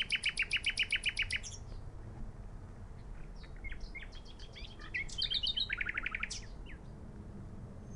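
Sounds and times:
Luscinia megarhynchos common nightingale singing: 0:00.0 - 0:01.9, 0:03.0 - 0:07.0.

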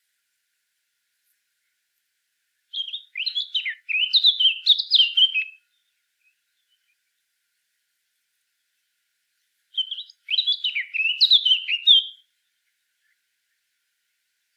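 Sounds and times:
Eurasian blackcap Sylvia atricapilla singing: 0:02.7 - 0:05.6, 0:09.8 - 0:12.2.

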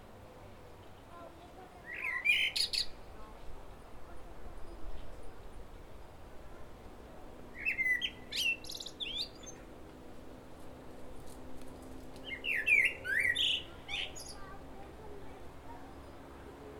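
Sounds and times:
Turdus merula common blackbird singing: 0:01.8 - 0:03.0, 0:07.6 - 0:09.6, 0:12.2 - 0:14.5.

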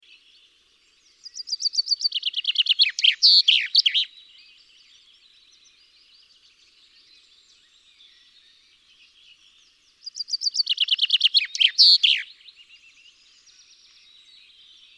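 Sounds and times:
Common chaffinch Fringilla coelebs song: 0:00.0 - 0:14.9.

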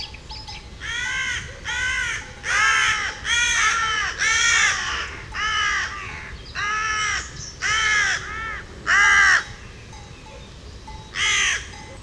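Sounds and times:
Carrion crow Corvus corone cawing: 0:00.8 - 0:09.6, 0:11.2 - 0:11.8.

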